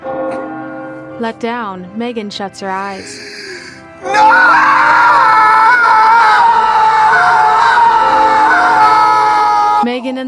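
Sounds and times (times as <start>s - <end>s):
speech: 1.2s - 3.4s, 4.0s - 5.4s
man yelling in frustration: 4.0s - 9.8s.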